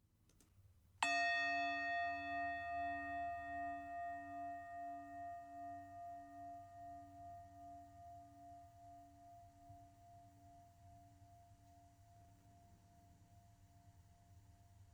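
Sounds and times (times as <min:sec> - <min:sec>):
meditation bell ringing: 0:01.0 - 0:09.8.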